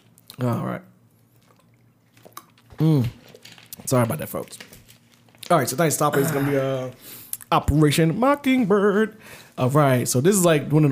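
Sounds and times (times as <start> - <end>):
speech: 0.4 - 0.9, 2.8 - 3.2, 3.9 - 4.7, 5.5 - 10.9
person sipping water with mouth clicks and slurping: 6.2 - 6.8.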